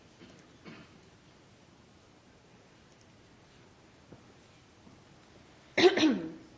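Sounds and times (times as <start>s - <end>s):
throat-clearing cough: 0.2s - 1.0s, 5.8s - 6.5s.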